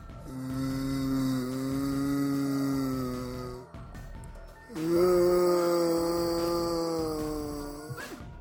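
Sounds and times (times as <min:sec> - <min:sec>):
person imitating zombie groans waking up: 0:00.2 - 0:03.7, 0:04.7 - 0:08.2.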